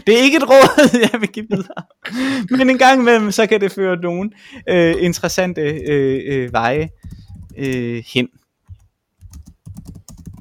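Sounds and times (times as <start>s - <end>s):
speech: 0.0s - 8.4s
laughter: 0.6s - 1.9s
rapid typing on a computer keyboard: 5.7s - 7.9s, 8.7s - 10.4s.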